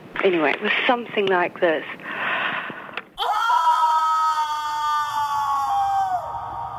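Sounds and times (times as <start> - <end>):
speech: 0.2 - 2.0
person imitating a long loud scream: 3.2 - 6.6.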